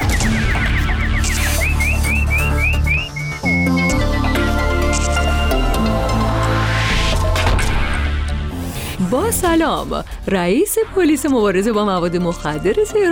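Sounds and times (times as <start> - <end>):
nightingale warbling song: 0.0 - 5.7
steady droning musical background: 0.0 - 13.1
speech: 9.3 - 13.1.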